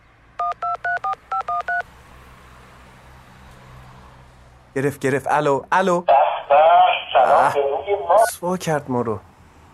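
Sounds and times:
touch-tone keypad beeps as a phone number is dialed: 0:00.4 - 0:01.8
speech: 0:04.8 - 0:09.3.

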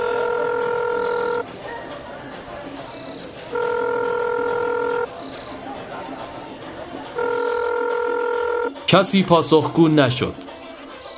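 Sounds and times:
long steady electronic phone ring tones: 0:00.0 - 0:01.5, 0:02.9 - 0:05.2, 0:07.0 - 0:08.9
faint murmur of noise: 0:00.0 - 0:08.9
speech: 0:08.9 - 0:10.4.

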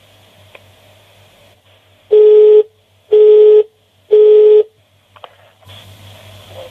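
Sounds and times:
unanswered telephone ringing tones: 0:02.1 - 0:04.7.

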